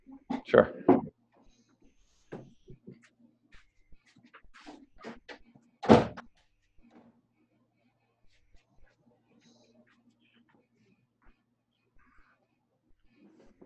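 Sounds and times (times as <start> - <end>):
speech: 0.5 - 0.9
door being pushed shut with a solid thud: 5.8 - 6.2.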